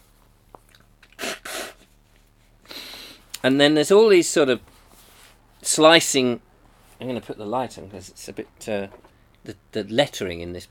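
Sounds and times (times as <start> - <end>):
single loud human sneeze: 1.2 - 1.9
speech: 3.4 - 4.7, 5.7 - 10.6.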